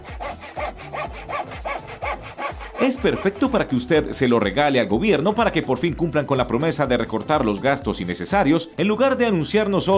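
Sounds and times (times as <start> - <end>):
hand saw sawing wood: 0.0 - 4.0
speech: 2.8 - 9.9.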